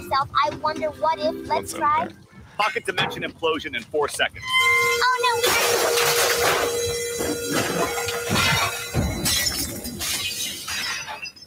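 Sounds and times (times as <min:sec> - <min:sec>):
speech: 0:00.1 - 0:08.0
loud sustained crash of shattering glass: 0:05.4 - 0:11.4
tumbling debris rumbling and clattering: 0:05.4 - 0:11.4.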